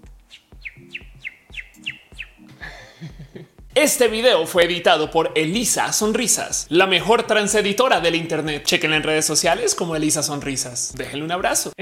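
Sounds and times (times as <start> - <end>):
person imitating little bird chirps: 0.3 - 2.6
laughter: 2.6 - 3.5
speech: 3.8 - 11.7.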